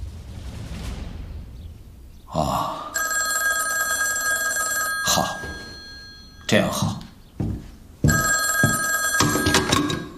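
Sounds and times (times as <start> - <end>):
speech: 2.3 - 2.8, 6.5 - 7.0
telephone bell ringing: 2.9 - 7.0, 8.0 - 10.1.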